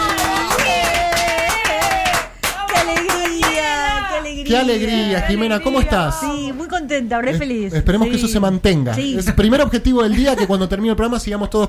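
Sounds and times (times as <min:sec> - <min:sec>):
audience applause with rhythmic hand claps: 0:00.0 - 0:03.8
speech: 0:04.5 - 0:11.6.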